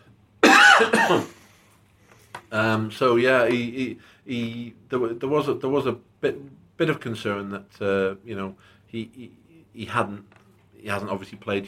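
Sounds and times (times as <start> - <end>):
person coughing: 0.4 - 1.4
speech: 0.8 - 1.4, 2.5 - 11.6.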